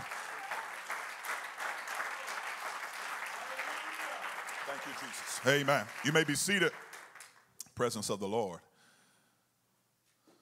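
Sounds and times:
audience clapping: 0.0 - 7.6
speech: 4.7 - 6.9, 7.8 - 8.7.

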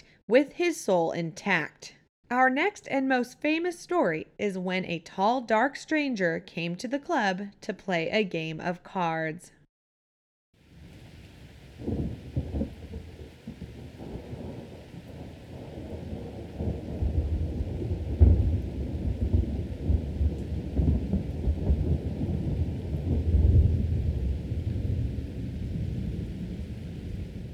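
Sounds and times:
speech: 0.3 - 9.6
constant low roar of rain: 10.6 - 27.5
deep rolling thunder at night: 10.8 - 27.5.

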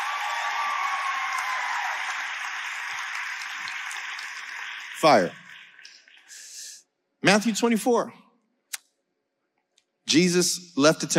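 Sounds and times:
audience clapping: 0.0 - 6.6
speech: 5.0 - 5.4, 7.2 - 8.2, 10.1 - 11.1.

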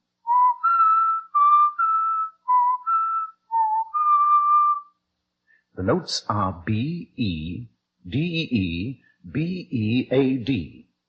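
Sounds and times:
person whistling a short melodic phrase: 0.3 - 4.9
speech: 5.8 - 10.8.

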